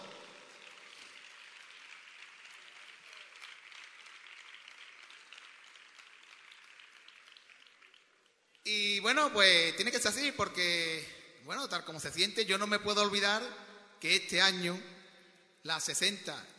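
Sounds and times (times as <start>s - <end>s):
crowd applause with many hands clapping: 0.0s - 8.6s
speech: 8.7s - 14.9s, 15.6s - 16.5s.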